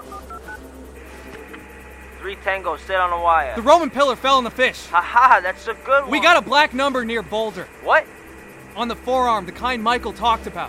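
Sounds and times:
satellite phone keypad dialing beeps: 0.0s - 0.6s
steady electronic hiss and hum: 0.0s - 10.6s
speech: 2.2s - 8.2s, 8.8s - 10.6s.

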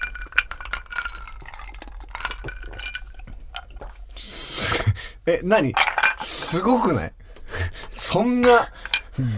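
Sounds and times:
glasses clinking in a toast: 0.0s - 3.9s, 5.8s - 7.0s, 8.5s - 9.2s
speech: 5.3s - 5.9s, 6.5s - 7.2s, 8.0s - 9.3s.

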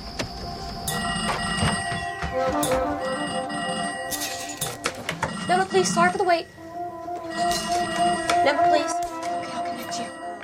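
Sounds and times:
several old-style telephone bells ringing on a switchboard: 0.5s - 10.4s
speech: 5.7s - 6.6s, 8.4s - 9.1s.

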